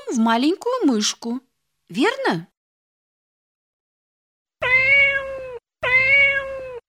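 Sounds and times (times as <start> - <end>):
speech: 0.1 - 2.5
cat meowing: 4.6 - 6.8.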